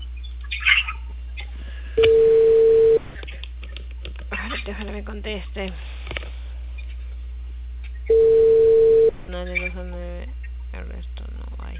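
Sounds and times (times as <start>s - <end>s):
telephone call tone: 2.0s - 3.0s, 8.1s - 9.2s
speech: 5.0s - 6.0s.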